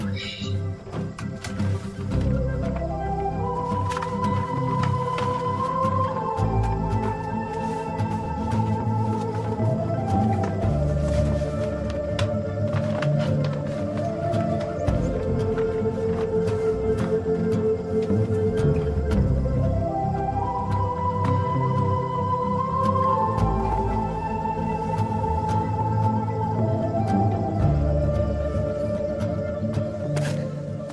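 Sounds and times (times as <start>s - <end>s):
upbeat film score with bright melody and full accompaniment: 0.0s - 30.9s.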